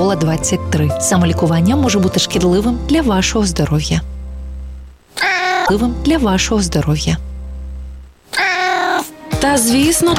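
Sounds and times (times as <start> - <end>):
speech: 0.0 - 4.1, 5.7 - 7.3, 9.4 - 10.1
steady low hum: 0.0 - 8.3
cat meowing in a new apartment: 5.2 - 5.7, 8.3 - 9.1.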